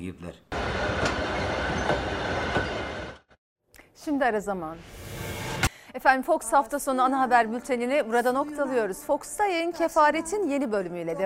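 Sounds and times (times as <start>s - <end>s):
speech: 0.0s - 1.2s, 4.0s - 5.0s, 6.0s - 11.2s
freight export train rumbling on rails: 0.6s - 3.4s.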